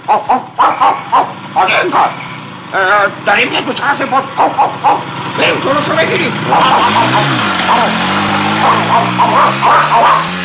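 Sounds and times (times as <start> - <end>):
two farm guard dogs barking at a man on a motorbike: 0.0 - 2.4, 4.0 - 5.5, 6.4 - 10.4
speech: 0.1 - 0.5, 1.8 - 10.3.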